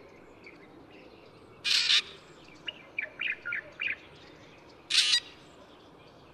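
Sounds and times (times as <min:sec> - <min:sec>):
Black drongo scratchy calls and clipped notes: 0:01.7 - 0:02.2, 0:04.9 - 0:05.4.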